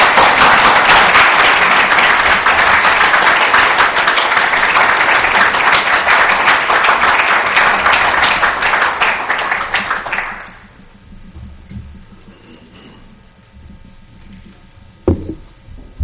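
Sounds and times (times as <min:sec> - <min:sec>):
large audience applauding: 0:00.0 - 0:10.8.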